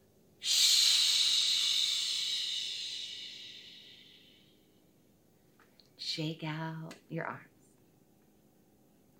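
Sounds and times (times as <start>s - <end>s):
long breathy exhale: 0.4s - 4.6s
speech: 6.2s - 7.5s.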